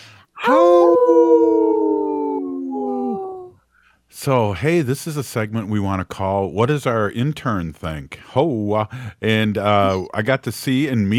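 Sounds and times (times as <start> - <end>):
wolf howling: 0.4 - 3.5
speech: 4.2 - 11.1.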